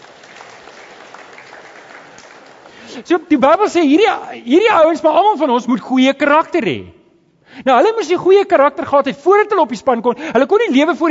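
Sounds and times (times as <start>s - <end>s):
audience applause: 0.0s - 3.0s
speech: 2.9s - 11.0s.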